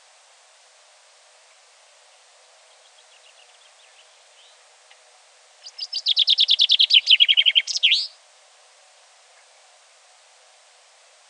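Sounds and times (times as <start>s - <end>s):
common chaffinch Fringilla coelebs singing: 2.1s - 5.0s, 5.6s - 8.2s.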